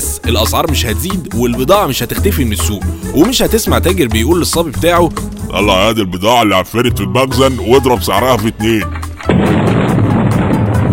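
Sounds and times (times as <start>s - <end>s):
speech: 0.2s - 9.5s
Ramadan iftar cannon firing: 9.2s - 10.9s.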